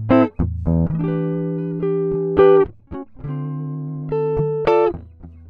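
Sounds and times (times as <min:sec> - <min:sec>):
soul music: 0:00.1 - 0:02.7, 0:03.3 - 0:04.9.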